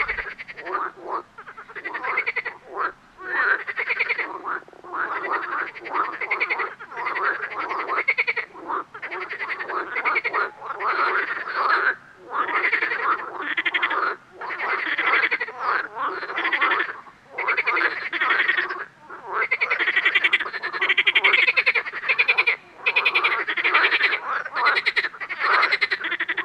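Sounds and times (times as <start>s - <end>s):
green frog: 0.0s - 26.4s.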